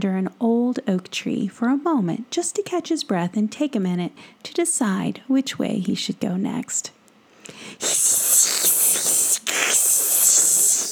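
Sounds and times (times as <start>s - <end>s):
speech: 0.0s - 8.2s
possum hissing: 7.7s - 10.9s.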